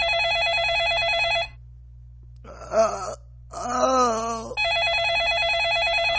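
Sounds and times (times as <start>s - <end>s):
house telephone ringing with a warbling electronic tone: 0.0s - 1.6s, 4.6s - 6.1s
person moaning and groaning loudly: 2.4s - 4.6s.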